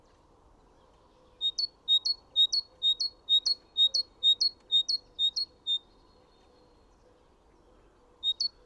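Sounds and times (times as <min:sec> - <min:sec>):
great tit singing clear two-syllable phrases: 0:01.4 - 0:06.0, 0:08.2 - 0:08.6.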